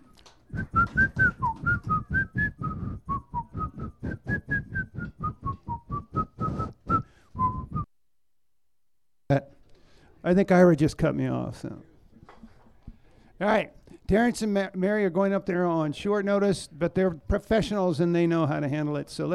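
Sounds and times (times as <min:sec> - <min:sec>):
audience whistling a folk tune together in unison: 0:00.0 - 0:07.9
speech: 0:10.3 - 0:11.9, 0:13.4 - 0:19.3.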